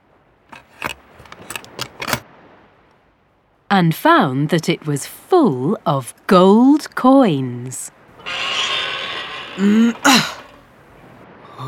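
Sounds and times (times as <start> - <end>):
key turning in the lock of an old treasure chest: 0.5 - 2.2
speech: 3.7 - 8.0, 9.6 - 10.4.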